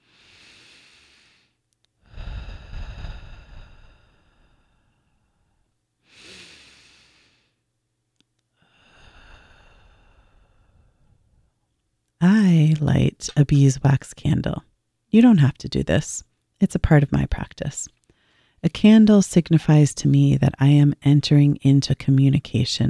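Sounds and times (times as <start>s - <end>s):
slow deep breaths to begin a meditation: 0.0s - 7.7s, 8.6s - 11.7s, 18.0s - 18.6s
speech: 12.7s - 18.0s, 18.6s - 22.8s.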